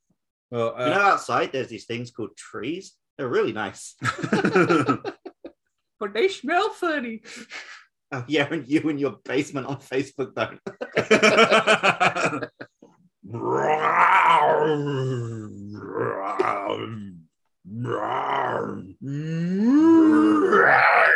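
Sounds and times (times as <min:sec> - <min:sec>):
speech: 0:00.5 - 0:05.2, 0:06.0 - 0:12.7, 0:13.3 - 0:21.1
laughter: 0:04.0 - 0:05.5, 0:10.4 - 0:12.8
person imitating a tiger cow with growling moans: 0:13.2 - 0:21.1.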